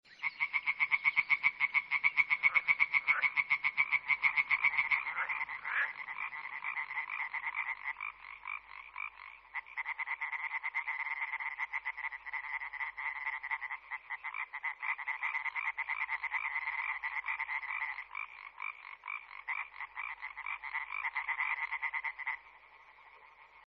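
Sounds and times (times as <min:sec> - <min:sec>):
Hyla arborea tree frog calling: 0:00.1 - 0:23.6.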